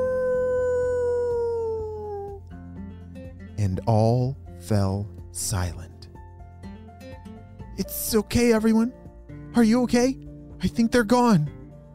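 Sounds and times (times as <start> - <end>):
animal howling: 0.0 - 2.4
speech: 3.6 - 5.9, 7.8 - 11.6.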